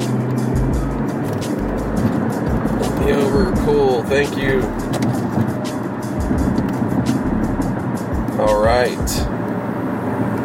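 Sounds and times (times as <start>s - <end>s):
car moving along the road with road and engine noise in the cabin: 0.0s - 10.4s
speech: 3.4s - 5.3s, 8.4s - 9.3s.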